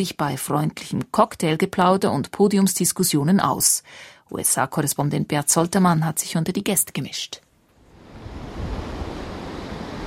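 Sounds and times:
speech: 0.0 - 7.4
ocean surf washing onto a beach in Miami early in the morning: 7.9 - 10.0.

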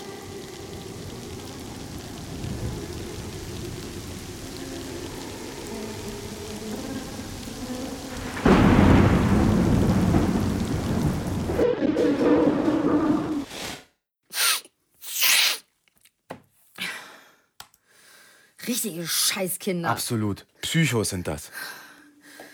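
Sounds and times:
steady rain: 0.0 - 13.5
rumbling roll of thunder: 0.3 - 13.5
speech: 18.8 - 21.8.

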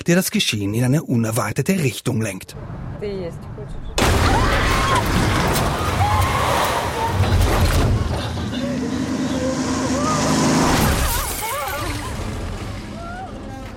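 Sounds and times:
speech: 0.0 - 5.3
car crash in a film: 4.0 - 13.0.

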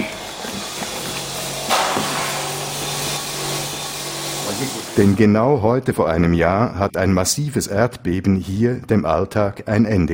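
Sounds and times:
screeching wood saw on a building site: 0.0 - 5.3
hammer blows on a building site: 1.5 - 5.2
speech: 4.6 - 10.1.

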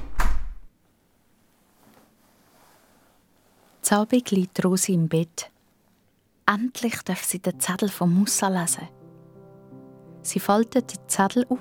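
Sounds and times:
bedroom door pushed shut quickly: 0.0 - 0.7
speech: 3.9 - 5.5, 6.5 - 9.0, 10.2 - 11.5.

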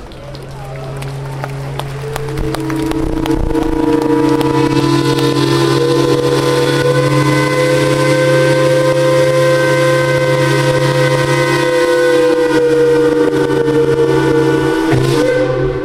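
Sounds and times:
several steamship steam whistles blaring together: 1.8 - 15.8.

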